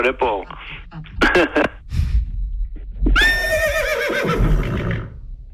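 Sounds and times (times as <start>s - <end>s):
speech: 0.0s - 1.8s
horse whinnying and nickering over a telephone: 3.2s - 5.2s.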